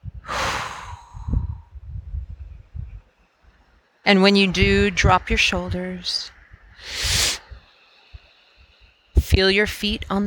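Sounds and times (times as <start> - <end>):
person breathing in deeply during a guided relaxation exercise: 0.2 - 1.8, 6.8 - 9.0
speech: 4.1 - 7.2, 9.4 - 10.2.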